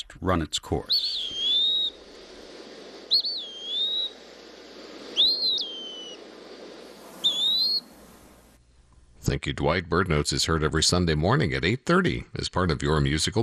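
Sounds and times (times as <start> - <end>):
speech: 0.1 - 1.4, 9.3 - 13.4
Eastern Wood-Pewee whistled calls in woods in late summer: 0.9 - 2.1, 2.8 - 6.3, 7.1 - 8.0.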